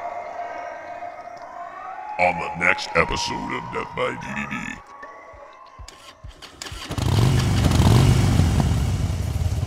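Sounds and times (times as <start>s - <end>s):
speech: 2.2s - 4.9s
laughter: 2.2s - 5.0s
motorcycle engine starting and revving: 6.0s - 9.6s.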